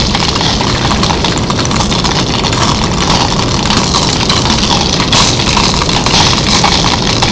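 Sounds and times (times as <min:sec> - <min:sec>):
fire burning: 0:00.0 - 0:07.3.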